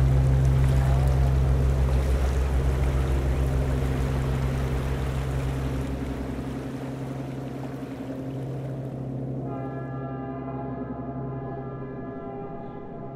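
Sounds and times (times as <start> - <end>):
water splashing against a river boat: 0.0 - 9.4
boat engine drone on the Amazon, Trombetas and Nyamunda rivers: 0.0 - 13.1.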